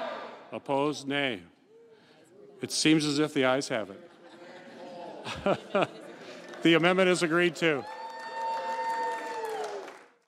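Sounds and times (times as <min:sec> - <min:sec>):
crowd cheering after a voice vote: 0:00.0 - 0:00.4, 0:05.2 - 0:10.2
speech: 0:00.5 - 0:01.6, 0:02.6 - 0:04.1, 0:05.2 - 0:06.0, 0:06.6 - 0:08.0
laughter: 0:03.8 - 0:07.8.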